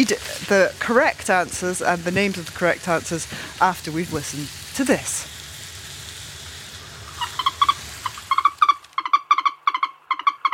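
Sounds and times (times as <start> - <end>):
speech: 0.0 - 5.4
moorhen giving loud clucking calls: 7.2 - 10.5.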